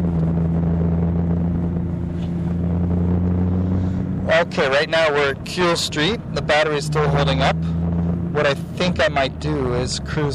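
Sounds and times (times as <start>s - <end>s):
car engine humming while driving: 0.0s - 10.3s
road noise: 0.0s - 10.3s
speech: 4.4s - 7.6s, 8.4s - 10.3s.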